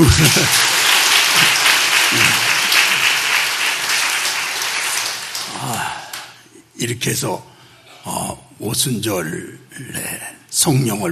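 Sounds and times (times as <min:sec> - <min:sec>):
speech: 0:00.0 - 0:00.8, 0:06.8 - 0:11.1
congregation applauding: 0:00.0 - 0:06.4.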